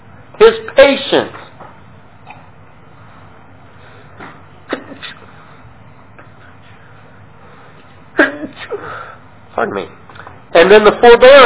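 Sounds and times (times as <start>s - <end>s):
speech: 0.4s - 1.4s, 9.6s - 10.0s, 10.7s - 11.4s
person sneezing: 4.7s - 5.3s.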